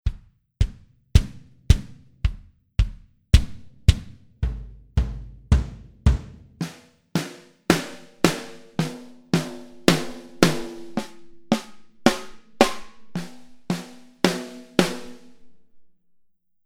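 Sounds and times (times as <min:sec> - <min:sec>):
kick drums: 0:00.0 - 0:15.3.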